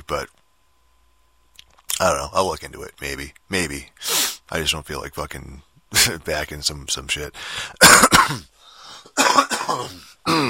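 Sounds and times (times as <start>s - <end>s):
speech: 0.1s - 0.4s, 2.0s - 10.4s
person coughing into microphone: 7.8s - 8.5s, 9.1s - 10.4s
throaty rasping throat-clearing: 9.2s - 10.4s.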